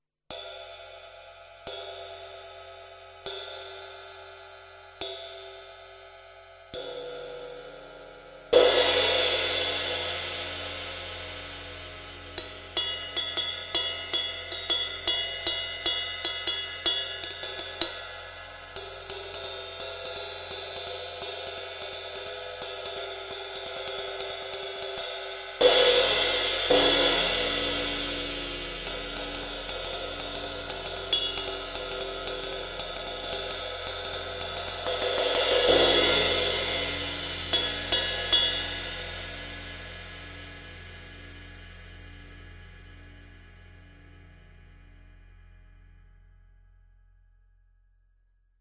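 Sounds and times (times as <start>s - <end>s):
20-inch ride cymbal: 8.5s - 40.7s.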